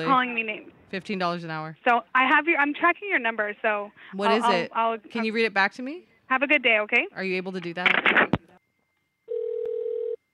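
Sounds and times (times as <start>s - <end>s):
speech: 0.0s - 8.4s
telephone line ringing tone: 9.2s - 10.3s.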